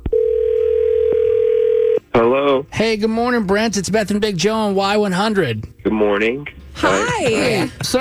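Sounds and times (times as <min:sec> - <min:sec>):
steady telephone ringing or line tone: 0:00.1 - 0:02.0
speech: 0:02.8 - 0:07.9
laughter: 0:06.8 - 0:07.9.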